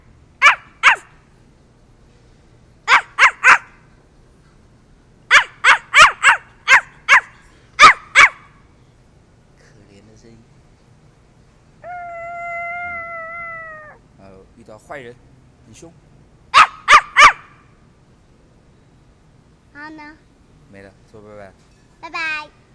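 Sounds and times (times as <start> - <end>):
dog barking: 0.4 - 1.1, 2.9 - 3.8, 5.3 - 8.5, 16.6 - 17.5.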